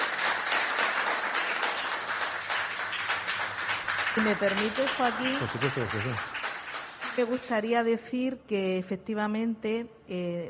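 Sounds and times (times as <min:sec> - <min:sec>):
crowd applause: 0:00.0 - 0:07.5
speech: 0:04.2 - 0:06.4, 0:07.2 - 0:10.4.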